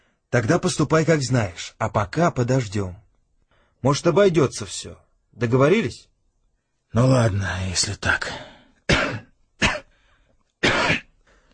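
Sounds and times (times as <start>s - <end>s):
speech: 0.3s - 3.0s, 3.8s - 6.1s, 6.9s - 8.5s
man coughing: 8.9s - 10.0s, 10.6s - 11.2s.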